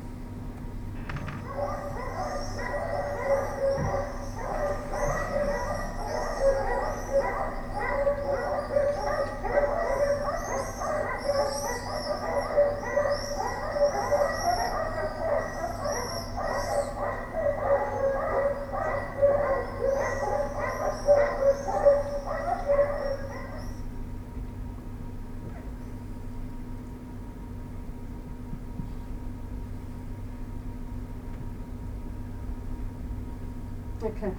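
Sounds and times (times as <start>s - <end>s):
steady low hum: 0.0s - 34.3s
several dogs barking excitedly: 1.1s - 24.0s
speech: 34.2s - 34.3s.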